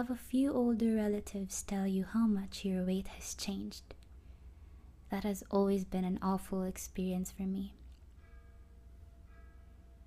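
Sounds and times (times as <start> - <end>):
speech: 0.0 - 4.0, 5.1 - 7.8
faint bell ringing: 8.0 - 10.0.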